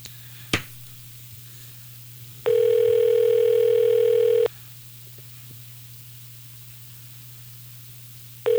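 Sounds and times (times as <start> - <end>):
loud electronic phone ring-back tone: 2.5 - 4.5
phone line click: 2.5 - 4.5.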